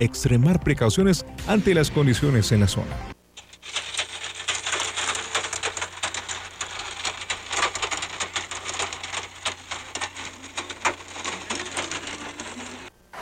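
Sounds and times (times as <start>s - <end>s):
speech: 0.0s - 3.1s
heavy hail clattering on hard surfaces: 3.4s - 12.9s.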